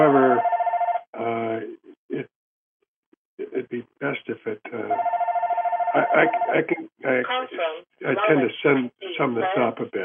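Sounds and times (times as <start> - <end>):
telephone ringing with a rapidly pulsing electronic tone: 0.3 - 1.1, 4.9 - 6.7
speech: 4.3 - 5.2, 6.0 - 10.0.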